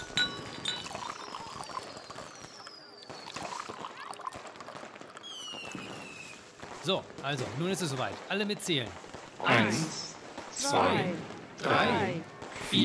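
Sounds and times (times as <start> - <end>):
glasses clinking: 0.0 - 2.2
sparkling wine pouring and fizzing into glasses: 0.0 - 6.2
speech: 6.8 - 12.8.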